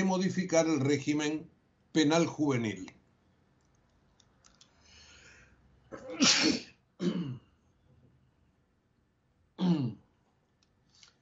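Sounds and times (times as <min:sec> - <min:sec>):
speech: 0:00.1 - 0:03.0, 0:05.9 - 0:07.2
person sneezing away from the microphone: 0:05.9 - 0:07.4
throat clearing: 0:09.6 - 0:10.0.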